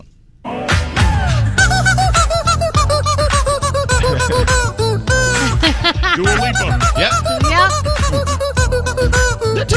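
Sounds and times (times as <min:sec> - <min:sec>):
loud pop song backing track: 0:00.0 - 0:09.7
rubber chicken squeaked by a man to a popular song: 0:01.6 - 0:05.4, 0:06.3 - 0:09.7
laughter: 0:04.0 - 0:04.7, 0:05.4 - 0:07.2.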